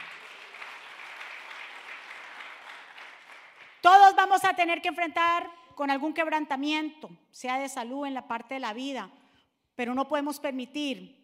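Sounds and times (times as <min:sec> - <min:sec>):
large audience applauding: 0:00.0 - 0:03.8
speech: 0:03.8 - 0:09.2, 0:09.8 - 0:11.2.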